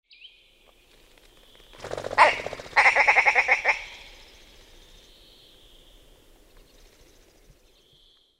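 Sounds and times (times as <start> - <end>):
willow grouse calling: 1.7 - 4.4.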